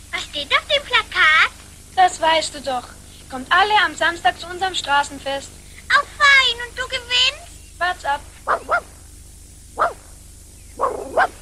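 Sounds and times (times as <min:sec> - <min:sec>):
speech: 0:00.4 - 0:00.6, 0:02.2 - 0:08.3
dog whiny yelping cries: 0:08.5 - 0:08.9, 0:09.8 - 0:10.0, 0:10.8 - 0:11.4.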